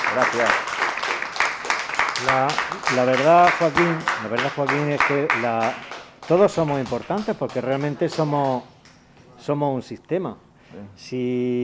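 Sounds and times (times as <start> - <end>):
crowd applauding: 0.0 - 9.1
speech: 0.2 - 0.7, 2.2 - 8.7, 9.4 - 11.6.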